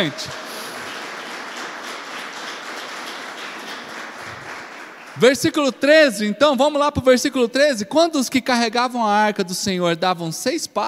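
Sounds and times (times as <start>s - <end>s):
speech: 0.0s - 0.4s, 5.2s - 10.8s
large crowd applauding: 0.0s - 5.8s.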